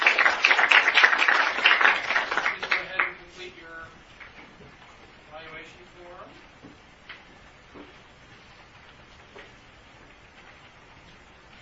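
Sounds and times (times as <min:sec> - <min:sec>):
room full of people applauding: 0:00.0 - 0:03.3.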